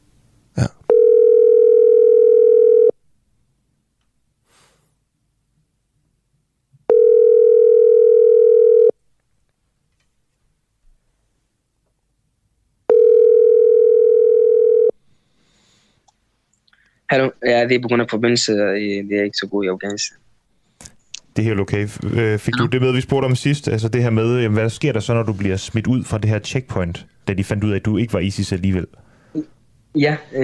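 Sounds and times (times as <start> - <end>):
speech: 0.6 - 0.8, 17.1 - 20.3, 21.4 - 30.4
outgoing WhatsApp internet call ringing tone: 0.9 - 3.0, 6.9 - 9.0, 12.9 - 15.0.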